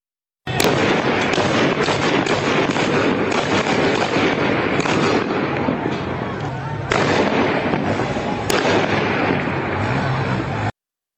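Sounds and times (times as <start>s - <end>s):
heavy gunfire in the street in Izeh: 0.5s - 10.7s
faint voices: 2.1s - 10.7s.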